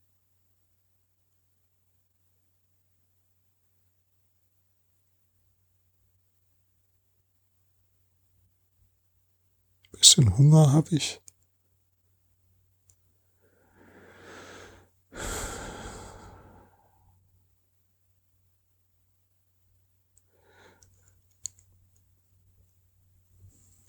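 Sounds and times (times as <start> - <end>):
speech: 10.0 - 11.3
deep breath in: 13.4 - 17.0.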